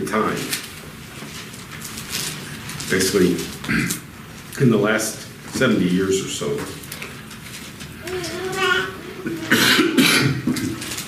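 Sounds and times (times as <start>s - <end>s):
speech: 0.1s - 0.6s, 2.9s - 4.0s, 4.6s - 6.8s
person coughing harshly: 9.2s - 10.8s.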